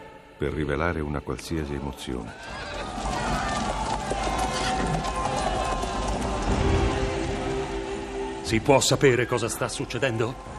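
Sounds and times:
speech: 0:00.4 - 0:03.2, 0:08.5 - 0:10.5
hurried footsteps running along a busy street: 0:02.2 - 0:06.8
hoof-like clip-clop: 0:02.2 - 0:07.2
dense crowd murmur: 0:02.2 - 0:08.4.

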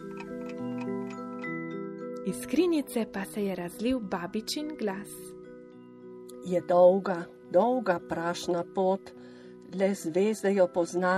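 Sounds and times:
music box being wound up: 0:00.0 - 0:01.6
speech: 0:02.3 - 0:05.3, 0:06.4 - 0:11.1.

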